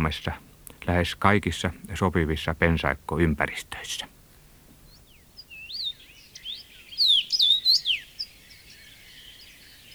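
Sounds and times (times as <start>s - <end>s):
speech: 0.0s - 4.1s
common rosefinch song: 4.9s - 9.9s.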